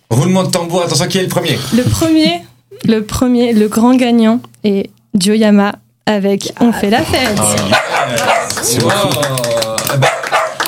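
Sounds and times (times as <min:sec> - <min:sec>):
speech: 0:00.2 - 0:10.2
dog barking and yipping high-pitched and whiny: 0:07.7 - 0:08.6, 0:10.0 - 0:10.6.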